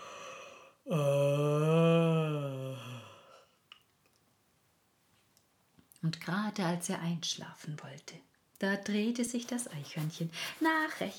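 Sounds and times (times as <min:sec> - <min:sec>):
faint breath: 0:00.0 - 0:00.8
narrator's voice imitating a bear's long deep yawn: 0:00.0 - 0:03.4
speech: 0:00.9 - 0:01.1, 0:06.6 - 0:11.1.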